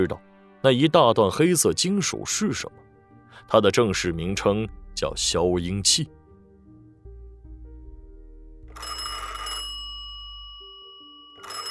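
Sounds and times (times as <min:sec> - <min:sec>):
speech: 0:00.0 - 0:06.2
low tonal background: 0:02.7 - 0:11.6
telephone bell ringing: 0:08.7 - 0:11.6.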